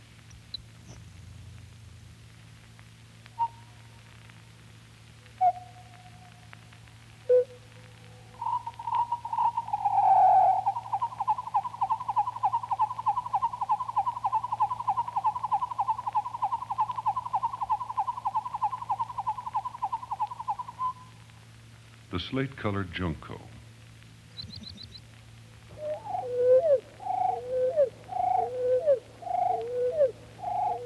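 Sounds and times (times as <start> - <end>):
low hum: 0.0 - 30.8
grasshopper sparrow song slowed and lowered in pitch: 7.3 - 21.2, 24.3 - 30.8
speech: 22.2 - 23.5.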